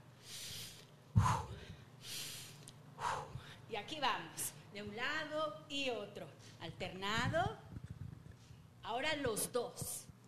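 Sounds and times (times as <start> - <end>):
slow breathing in through the nose and out through the mouth: 0.0 - 3.7
speech: 3.9 - 7.6, 8.9 - 10.0.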